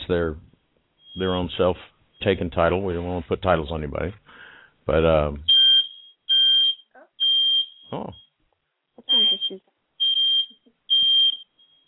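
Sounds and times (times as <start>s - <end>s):
speech: 0.1s - 0.5s, 1.2s - 5.5s, 7.9s - 8.2s, 9.0s - 9.7s
home fire alarm shrill high-pitched beeps: 5.5s - 8.3s, 9.1s - 11.8s.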